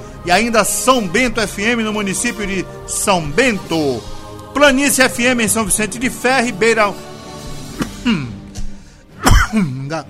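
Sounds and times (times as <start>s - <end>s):
speech: 0.2s - 7.1s, 8.0s - 8.3s, 9.5s - 10.0s
person choking and coughing with throat clearing: 7.8s - 8.6s, 9.2s - 9.8s.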